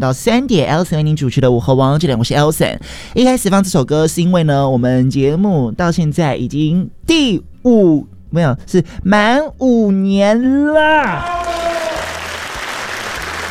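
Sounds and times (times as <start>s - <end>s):
speech: 0.0s - 11.7s
audience applause: 11.2s - 13.4s.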